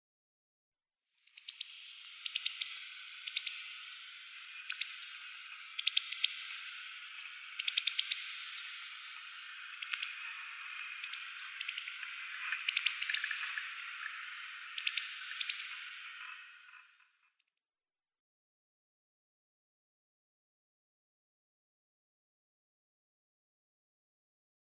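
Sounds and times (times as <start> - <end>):
rock bunting calling: 1.3 - 16.9.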